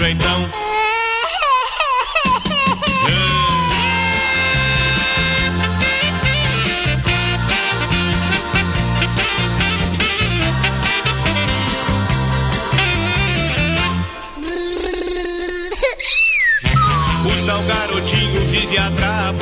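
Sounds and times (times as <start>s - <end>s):
baby crying: 0.6s - 5.0s, 14.1s - 17.3s
loud bouncy band music: 2.2s - 15.8s, 16.6s - 19.4s.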